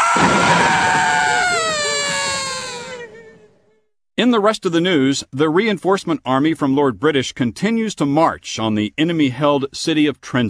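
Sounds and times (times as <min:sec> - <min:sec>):
loud sustained scream sound effect in a radio advertisement: 0:00.0 - 0:03.4
speech: 0:04.2 - 0:10.4.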